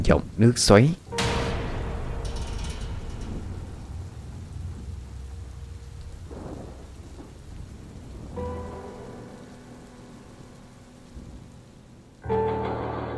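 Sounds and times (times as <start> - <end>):
rain pattering on surfaces: 0.0 - 12.6
speech: 0.1 - 1.0
thunder rumbling through a heavy rainstorm: 1.0 - 13.0.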